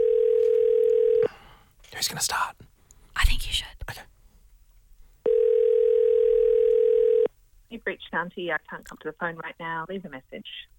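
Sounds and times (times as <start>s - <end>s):
steady loud telephone dial tone: 0.0s - 1.3s, 5.3s - 7.3s
speech: 2.0s - 2.6s, 7.9s - 10.7s.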